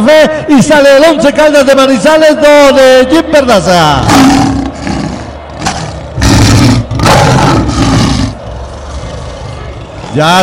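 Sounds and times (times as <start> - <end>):
speech: 0.2 - 4.6, 10.1 - 10.4
lion roar sound effect: 4.0 - 9.5.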